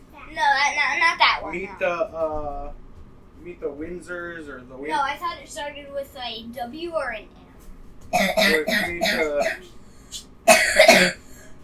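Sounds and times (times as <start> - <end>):
speech: 1.5 - 2.8, 3.4 - 7.4, 8.1 - 10.2, 10.8 - 11.2
rough rapid coughs: 8.2 - 9.7, 10.5 - 11.5
throat clearing: 8.2 - 9.7, 10.5 - 11.3.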